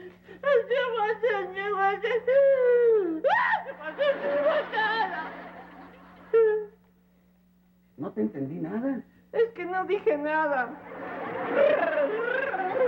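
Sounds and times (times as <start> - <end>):
boy crying and wailing: 0.4 - 5.2, 6.3 - 6.8, 11.6 - 12.8
laughter: 3.6 - 6.8, 10.8 - 12.8
speech: 8.2 - 12.8.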